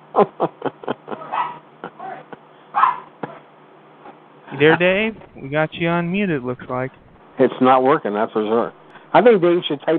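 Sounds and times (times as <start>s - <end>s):
laughter: 0.2s - 2.4s
dog barking: 1.2s - 3.4s
speech: 4.6s - 9.9s.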